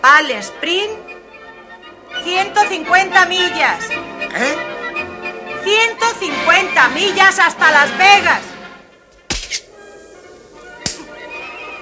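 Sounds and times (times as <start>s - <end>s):
speech: 0.0s - 1.2s, 2.2s - 4.8s, 5.6s - 8.5s
woman slapping her husband across the face: 9.3s - 9.7s, 10.8s - 11.1s.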